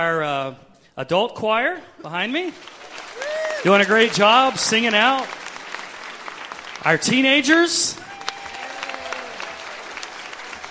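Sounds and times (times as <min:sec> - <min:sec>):
speech: 0:00.0 - 0:02.8, 0:03.6 - 0:05.4, 0:06.8 - 0:08.1
crowd applauding across a room: 0:02.5 - 0:10.6.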